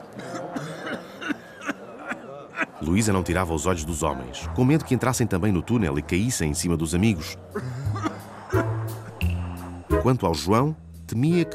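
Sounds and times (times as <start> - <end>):
man coughing: 0.2 - 2.8, 7.5 - 8.3
laughter: 0.4 - 3.0, 7.4 - 9.2
speech: 2.8 - 8.0, 10.0 - 11.5.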